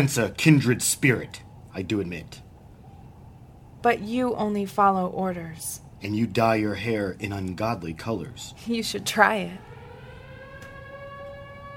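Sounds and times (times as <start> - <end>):
speech: 0.0 - 2.4, 3.8 - 9.7
town air raid siren wailing: 8.0 - 11.7.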